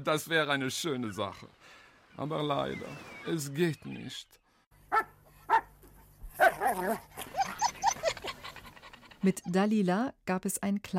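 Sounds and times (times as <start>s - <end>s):
speech: 0.0s - 5.2s, 6.6s - 7.4s, 9.2s - 10.9s
female dog barking and yipping: 4.9s - 9.0s.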